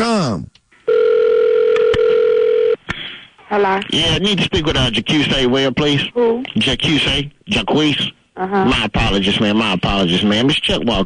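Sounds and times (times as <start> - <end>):
telephone ringing as a prank phone call is placed: 0.9 - 2.8
speech: 3.5 - 11.0.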